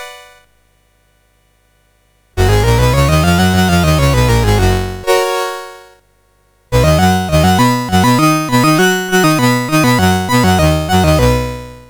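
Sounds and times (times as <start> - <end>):
basic scales and triads on a MOS 6581R3 sound chip: 2.4 - 5.2, 6.7 - 11.8.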